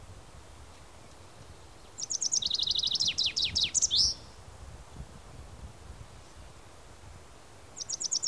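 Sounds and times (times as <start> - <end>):
common chaffinch Fringilla coelebs singing: 0.8 - 4.4, 7.7 - 8.2.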